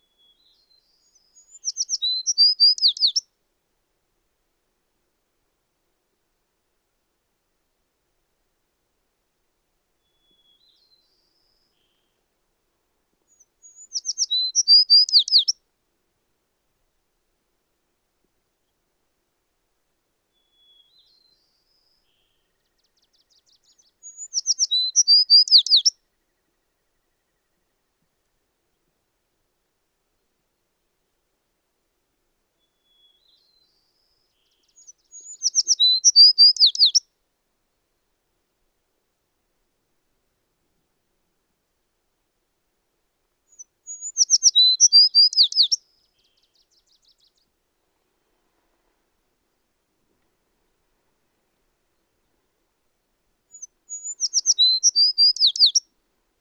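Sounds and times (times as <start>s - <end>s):
American tree sparrow singing: 0.2s - 3.2s, 13.3s - 15.5s, 22.2s - 26.4s, 32.8s - 37.0s, 43.5s - 47.4s, 53.5s - 55.8s.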